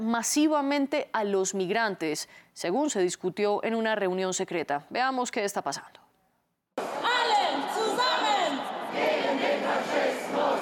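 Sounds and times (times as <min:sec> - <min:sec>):
speech: 0:00.0 - 0:06.0
protest crowd chanting slogan: 0:06.8 - 0:10.5.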